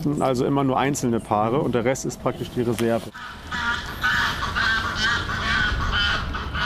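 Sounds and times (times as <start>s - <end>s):
speech: 0.0s - 3.8s
dominant goose's triumph call honking: 3.1s - 6.6s.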